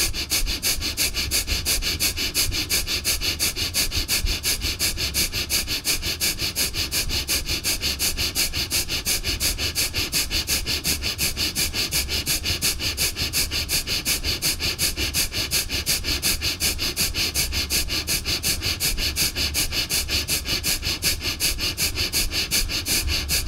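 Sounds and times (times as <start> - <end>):
rapid forceful breathing in and out through the nose: 0.0 - 23.4.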